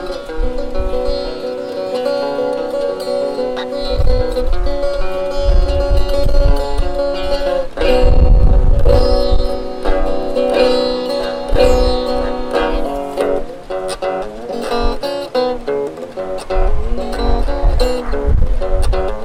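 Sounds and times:
guitar playing chords by a river: 0.0s - 19.2s.

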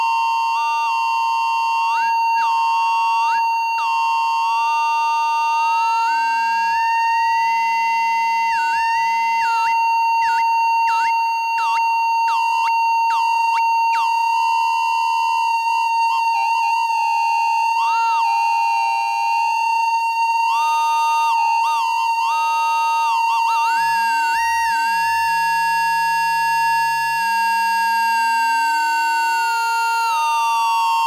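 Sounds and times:
constant high drone: 0.0s - 30.9s
internal audio feedback tones of a no-input mixer squealing and gliding: 1.7s - 25.8s.

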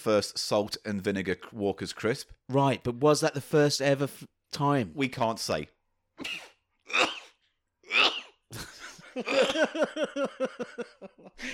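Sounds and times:
speech: 0.0s - 7.1s, 8.5s - 11.5s
sharp sneezes: 6.2s - 8.4s
rhythmic laughter: 8.5s - 11.5s.

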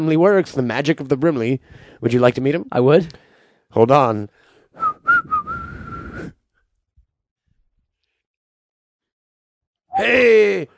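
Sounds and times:
speech: 0.0s - 4.9s, 10.0s - 10.7s
person whistling: 4.8s - 6.4s.

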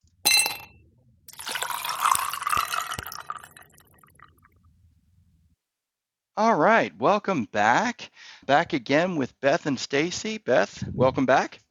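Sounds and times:
glass clinking: 0.3s - 4.0s
liquid pouring into a glass: 1.3s - 4.4s
speech: 6.4s - 11.6s.

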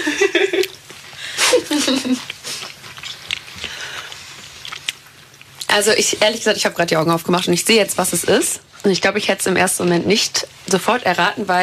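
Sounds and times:
laughter: 0.0s - 0.7s
speech: 1.9s - 2.4s, 5.7s - 11.6s
crunchy chewing of vanilla crescent cookies: 2.2s - 6.5s.

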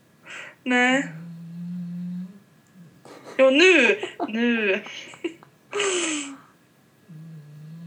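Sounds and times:
speech: 0.6s - 1.2s, 3.4s - 6.4s
sleeping pet snoring with raspy snort and low rumbling drone: 1.0s - 3.0s, 7.1s - 7.8s
laughter: 3.1s - 6.3s.

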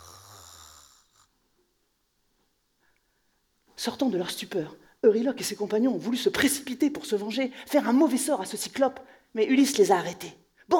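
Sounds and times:
deep rumbling snore: 0.0s - 1.3s
speech: 3.8s - 10.7s.

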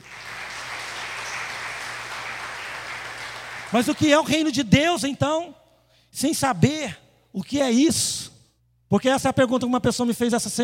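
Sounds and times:
crowd applauding: 0.0s - 4.3s
speech: 3.7s - 8.3s, 8.9s - 10.6s.

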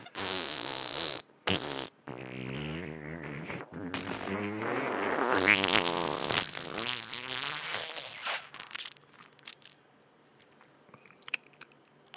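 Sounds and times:
person blowing a long wet raspberry imitating a fart: 0.0s - 9.7s.

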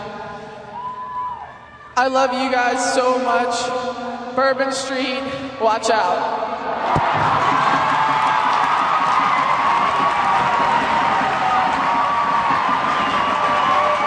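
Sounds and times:
speech: 2.0s - 7.1s
huge stadium crowd cheering in New Orleans after a farewell speech: 6.6s - 14.0s.

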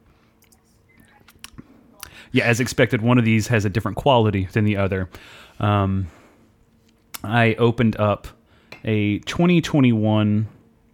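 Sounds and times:
faint wet mouth clicks while sipping imperial stout: 0.4s - 2.1s
speech: 2.2s - 6.2s, 7.2s - 10.6s.

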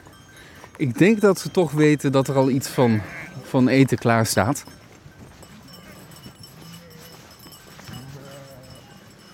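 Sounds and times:
flock of sheep running through a gate, hooves clattering: 0.0s - 9.3s
speech: 0.8s - 4.8s
sheep bleating: 2.8s - 3.5s, 7.9s - 8.8s.

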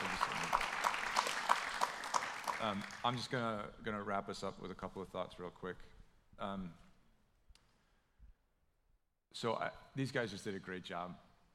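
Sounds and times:
crowd applauding: 0.0s - 3.2s
speech: 2.6s - 6.8s, 9.3s - 11.2s.

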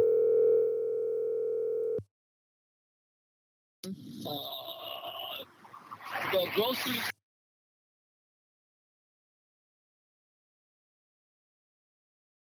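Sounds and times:
loud steady electronic phone ringing tone: 0.0s - 2.0s
phone-quality voices talking: 3.8s - 7.1s.

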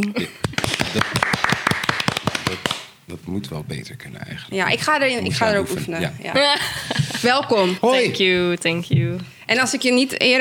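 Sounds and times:
thin scattered applause of hand claps: 0.0s - 3.0s
speech: 3.4s - 10.3s
laughter: 6.4s - 8.2s.

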